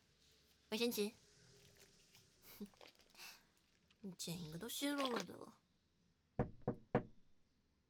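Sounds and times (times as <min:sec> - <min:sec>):
speech: 0:00.7 - 0:01.2, 0:02.6 - 0:02.9, 0:04.0 - 0:05.6
knocking on a door: 0:06.4 - 0:07.2.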